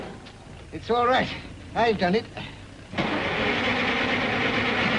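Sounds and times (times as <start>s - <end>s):
speech: 0.8s - 3.0s
car engine cranking but failing to start: 2.9s - 4.9s.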